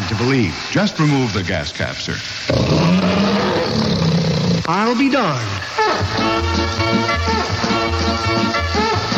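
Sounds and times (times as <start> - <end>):
speech: 0.1 - 3.2, 4.7 - 9.0
tiger roar: 2.5 - 4.7.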